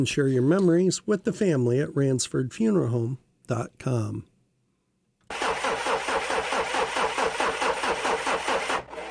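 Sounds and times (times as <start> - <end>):
speech: 0.0 - 4.3
car engine cranking but failing to start: 5.3 - 9.0.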